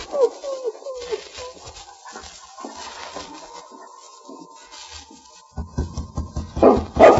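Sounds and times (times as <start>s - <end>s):
dog whimpering with high wavering whines: 0.0s - 2.4s
dog barking loudly: 6.6s - 7.1s.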